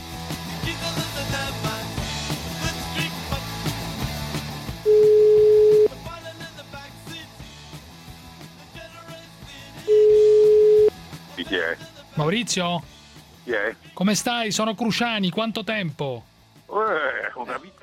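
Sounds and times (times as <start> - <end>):
busy music bed: 0.0 - 17.8
telephone ringing tones of an outgoing call: 4.9 - 5.9, 9.9 - 10.9
speech: 12.3 - 17.7.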